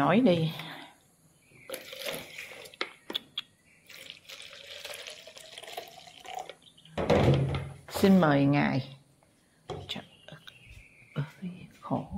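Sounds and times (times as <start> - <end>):
speech: 0.0 - 0.7, 8.0 - 9.0
water poured into a glass, overflowing and spilling: 1.7 - 2.8, 3.8 - 6.8.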